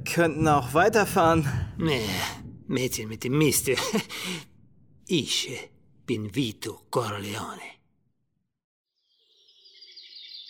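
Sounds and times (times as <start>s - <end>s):
speech: 0.0s - 4.5s, 5.1s - 7.8s
morning birdsong in a mountain setting: 9.0s - 10.4s.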